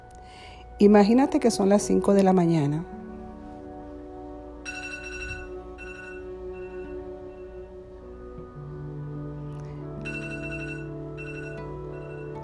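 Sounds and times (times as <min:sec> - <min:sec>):
steady low tonal background: 0:00.0 - 0:12.4
speech: 0:00.8 - 0:03.0
alarm clock ringing: 0:04.6 - 0:07.6, 0:10.0 - 0:12.4.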